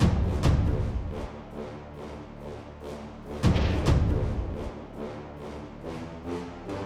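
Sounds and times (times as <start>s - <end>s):
cinematic drum tones: 0.0s - 1.3s, 3.4s - 4.8s.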